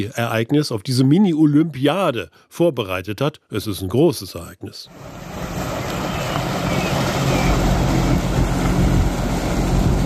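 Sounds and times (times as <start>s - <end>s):
wind: 0.0s - 2.9s, 3.5s - 10.0s
speech: 0.0s - 5.6s
tugboat engine rumble towing a floating stage across a lake: 4.9s - 10.0s
water noise on a lake: 4.9s - 10.0s.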